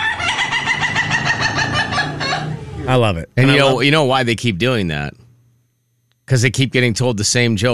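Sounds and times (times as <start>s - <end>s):
Indonesian Laughing Chicken giving a long pulsed crow: 0.0s - 2.6s
speech: 2.9s - 5.2s, 6.3s - 7.7s.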